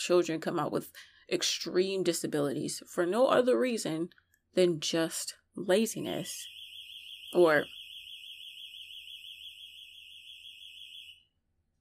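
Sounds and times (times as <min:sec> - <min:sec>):
speech: 0:00.0 - 0:06.6, 0:07.3 - 0:07.8
electronic alarm going off with shrill warbling tone: 0:06.4 - 0:11.2.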